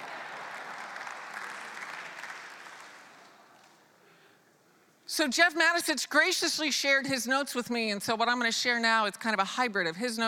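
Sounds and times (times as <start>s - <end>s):
church audience applause: 0.0s - 3.7s
speech: 5.1s - 10.2s.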